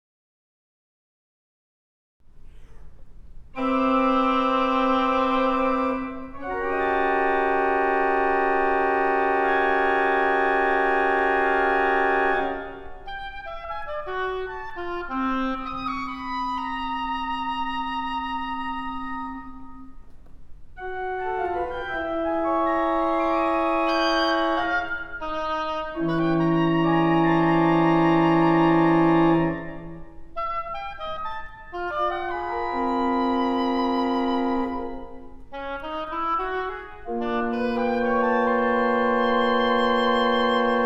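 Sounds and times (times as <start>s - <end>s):
oboe: 3.6s - 20.2s, 20.8s - 40.8s.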